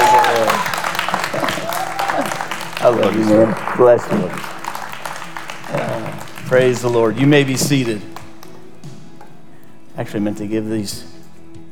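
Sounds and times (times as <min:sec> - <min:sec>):
church audience applauding a visiting teacher: 0:00.0 - 0:08.6
speech: 0:02.9 - 0:04.6, 0:06.5 - 0:08.1, 0:10.0 - 0:11.1.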